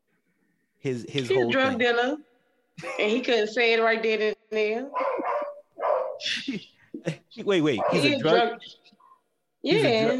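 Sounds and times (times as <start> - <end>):
speech: 0.8 - 5.1, 6.2 - 8.8, 9.6 - 10.1
neighbour's dog barking harshly: 4.9 - 6.2, 7.7 - 8.3.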